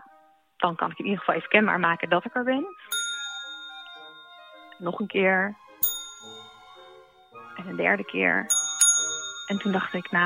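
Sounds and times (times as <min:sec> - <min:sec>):
speech: 0:00.6 - 0:03.0, 0:04.8 - 0:05.6, 0:07.6 - 0:08.6, 0:09.5 - 0:10.2
service bell struck on a shop counter: 0:02.9 - 0:04.8, 0:05.8 - 0:07.0, 0:08.5 - 0:10.2.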